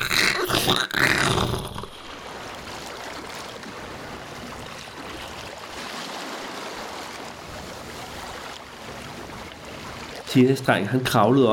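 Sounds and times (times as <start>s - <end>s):
grinding noise of a fishing cutter running aground: 0.0s - 2.1s
churning waves around a fishing cutter running aground: 0.0s - 10.3s
loud continuous rush of water: 0.0s - 10.3s
speech: 0.7s - 1.1s, 10.3s - 11.5s.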